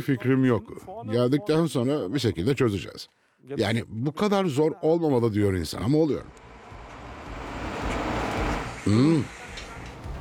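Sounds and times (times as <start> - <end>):
speech: 0.0 - 6.4, 8.8 - 9.4
loud rising-and-falling whine: 6.3 - 8.8
garbage truck arriving with heavy engine rumbling: 6.3 - 10.1.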